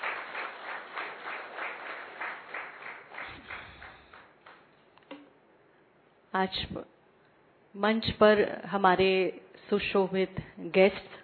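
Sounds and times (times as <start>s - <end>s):
crowd applauding: 0.0s - 4.6s
speech: 6.3s - 7.0s, 7.7s - 11.2s.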